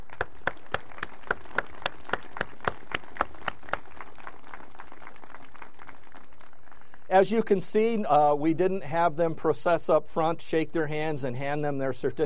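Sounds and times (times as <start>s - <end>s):
standing audience applauding people who have gone through the catechism: 0.0s - 7.1s
speech: 7.1s - 12.2s.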